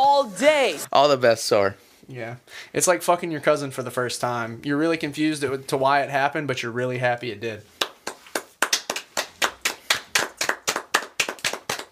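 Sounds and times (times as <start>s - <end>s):
speech: 0.2s - 7.8s
hands clapping in a steady rhythm: 7.7s - 11.9s.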